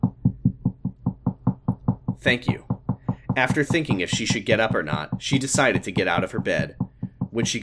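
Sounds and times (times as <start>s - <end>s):
knocking on a wooden front door: 0.0s - 7.6s
speech: 2.2s - 2.7s, 3.4s - 7.6s.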